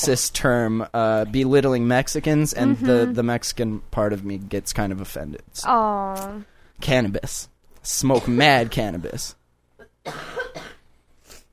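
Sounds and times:
speech: 0:00.0 - 0:09.4, 0:10.0 - 0:10.7
harsh single cough: 0:08.1 - 0:08.4, 0:09.8 - 0:10.8.

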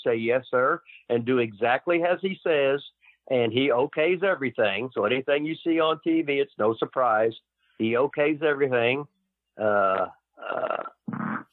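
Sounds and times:
speech: 0:00.0 - 0:11.5
loud fart: 0:09.6 - 0:11.5.

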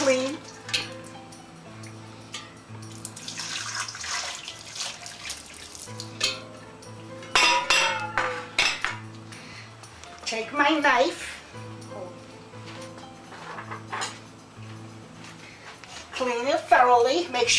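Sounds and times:
metal pot clinking: 0:00.0 - 0:01.3, 0:02.3 - 0:06.6, 0:07.2 - 0:09.0
boiling water poured over a turkey in a pan: 0:03.1 - 0:06.0
speech: 0:10.6 - 0:11.2, 0:16.3 - 0:17.5.

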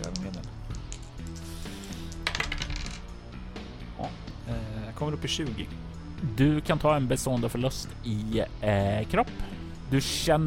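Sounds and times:
two dice clattering across a hard surface: 0:00.0 - 0:03.1
music: 0:00.0 - 0:10.4
speech: 0:05.0 - 0:10.4.

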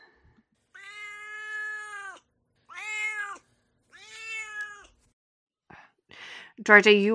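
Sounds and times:
cat meowing: 0:00.7 - 0:05.0
speech: 0:06.6 - 0:07.1.

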